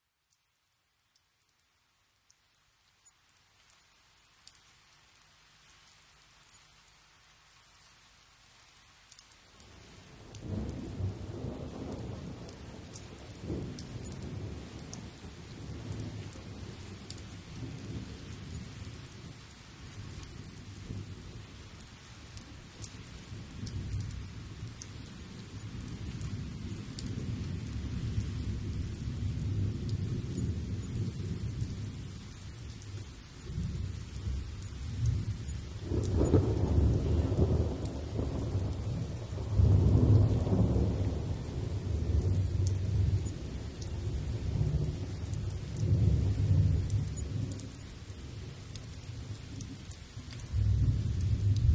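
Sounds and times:
thunderstorm in a field: 10.2s - 21.2s, 22.4s - 51.7s.

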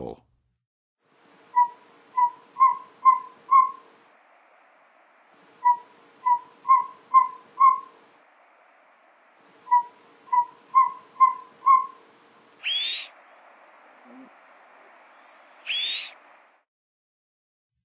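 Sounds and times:
Northern Saw-whet Owl in the Western USA: 1.5s - 3.9s, 5.6s - 8.0s, 9.7s - 12.0s, 12.6s - 13.2s, 14.0s - 14.4s, 15.1s - 16.2s.

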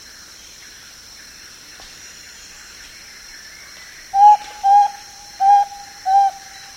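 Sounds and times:
Spotted antpitta singing clear whistled notes in South America: 4.2s - 6.7s.

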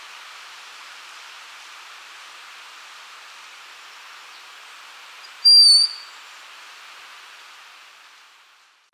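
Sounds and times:
faint hiss: 0.0s - 8.9s
broad-winged hawk whistling call in Ecuador: 5.2s - 6.2s.

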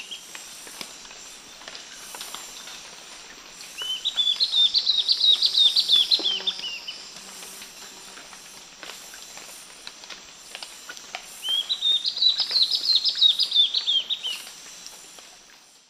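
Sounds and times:
Spot-backed antbird Hylophylax naevius singing in várzea forest: 3.8s - 7.0s, 11.4s - 14.4s.

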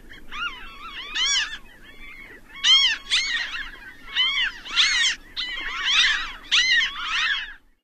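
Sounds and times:
Ring-billed gull giving harsh mewing calls in North America: 0.0s - 7.6s.

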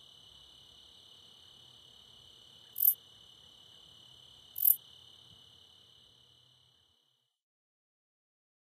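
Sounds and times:
steady high-pitched hum from other insects: 0.0s - 7.3s
Treetop Bush Katydid song: 2.8s - 3.0s, 4.6s - 4.8s.

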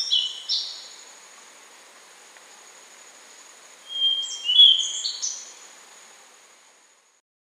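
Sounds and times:
constant high insect drone in Ecuador: 0.0s - 7.2s
Rufous-brown solitaire whistling song in Ecuador: 3.9s - 5.5s.

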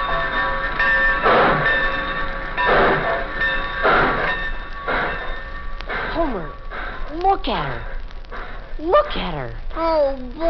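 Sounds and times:
train rumbling at a railroad station: 0.0s - 9.8s
train hissing chuffs at a railroad station: 1.0s - 7.2s
speech: 7.3s - 7.9s, 8.8s - 10.4s.

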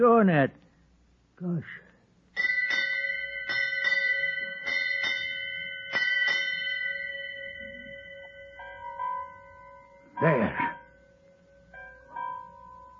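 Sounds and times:
speech: 0.0s - 0.6s, 1.4s - 1.8s
ship's bell striking eight bells aboard a ship in fog: 2.4s - 12.9s
faint answering chime: 7.2s - 12.9s.

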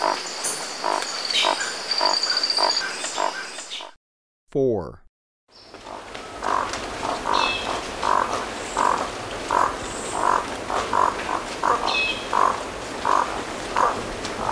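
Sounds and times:
crimson-rumped toucanet croaking calls in Ecuador: 0.8s - 3.5s, 6.4s - 14.5s
speech: 4.5s - 5.6s.

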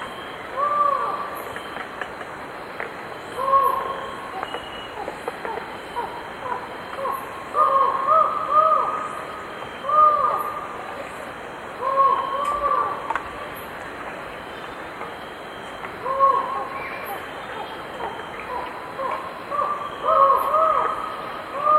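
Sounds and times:
Collared forest-falcon uttering hollow arched ow notes in Ecuador: 0.0s - 1.9s, 3.2s - 11.1s, 11.8s - 13.7s, 15.4s - 21.7s
constant hiss: 0.0s - 21.7s.

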